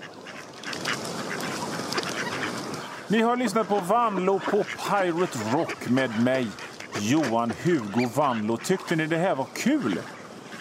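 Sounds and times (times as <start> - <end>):
flock of ducks quacking: 0.0 - 10.5
speech: 3.1 - 10.2.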